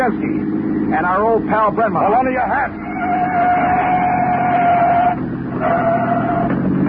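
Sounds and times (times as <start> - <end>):
speech: 0.0 - 3.7
police car engine rumbling and roaring: 0.0 - 6.8
police car siren with steady high tone: 2.8 - 6.5.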